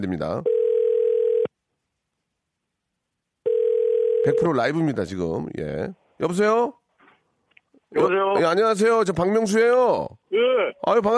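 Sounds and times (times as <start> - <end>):
speech: 0.0 - 0.6, 4.2 - 6.8, 7.9 - 11.1
telephone ringback tone while dialing a caller: 0.4 - 1.5, 3.5 - 4.5.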